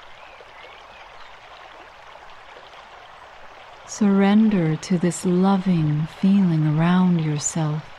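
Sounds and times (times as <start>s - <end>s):
water trickling over stones: 0.0s - 7.9s
speech: 3.9s - 7.9s.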